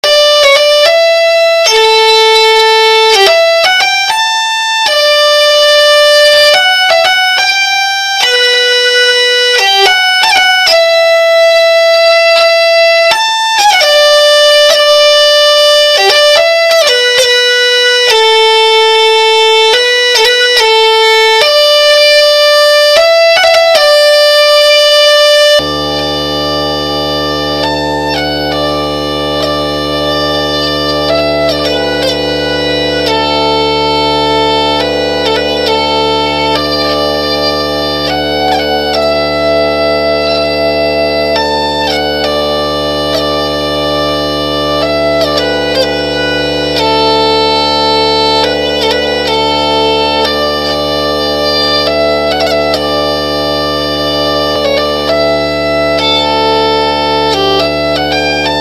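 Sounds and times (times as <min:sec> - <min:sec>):
vielle drone on D: 0:00.0 - 0:58.5.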